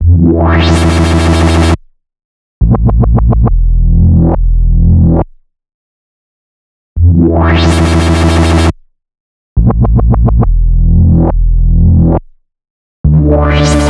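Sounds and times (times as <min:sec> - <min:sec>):
bass loop in E: 0:00.0 - 0:01.8, 0:02.6 - 0:05.3, 0:07.0 - 0:08.7, 0:09.6 - 0:12.2, 0:13.0 - 0:13.8.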